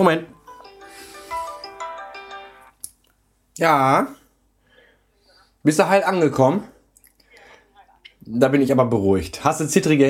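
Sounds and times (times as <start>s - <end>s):
speech: 0.0s - 0.3s, 3.6s - 4.2s, 5.6s - 6.7s, 8.2s - 10.0s
mobile phone playing a melodic ringtone for an incoming call: 0.4s - 2.8s.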